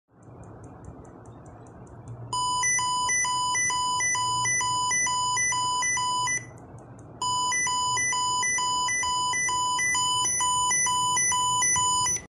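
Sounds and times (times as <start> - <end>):
electronic device beeps: 2.3 - 6.6, 7.2 - 12.2.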